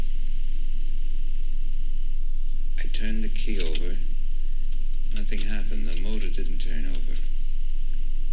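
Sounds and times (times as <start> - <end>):
low constant hum: 0.0 - 8.3
steady hiss in a car after the ignition key is turned: 2.8 - 7.3
speech: 2.9 - 4.1, 5.2 - 7.3.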